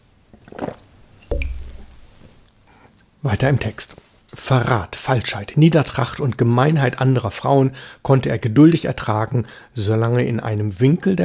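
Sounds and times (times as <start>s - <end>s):
swallowing gulp of water: 0.4s - 2.0s
person sipping water with a wet slurp: 0.4s - 2.9s
speech: 3.2s - 11.2s.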